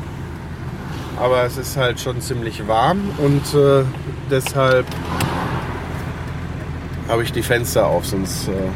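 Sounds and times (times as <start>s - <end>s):
cars passing by outside: 0.0s - 8.7s
speech: 1.2s - 5.5s, 7.1s - 8.7s.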